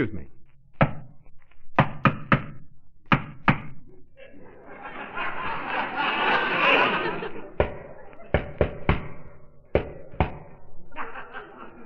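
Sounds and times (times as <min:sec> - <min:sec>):
speech: 0:00.0 - 0:00.3
sharp rhythmic knocking on a cellar door: 0:01.8 - 0:03.7, 0:07.6 - 0:10.5
laughter: 0:04.1 - 0:09.7, 0:10.4 - 0:11.8.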